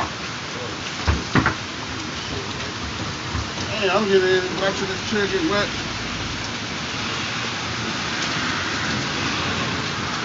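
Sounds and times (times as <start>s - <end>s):
heavy rain in a stormy downpour: 0.0s - 10.2s
speech: 3.8s - 5.9s.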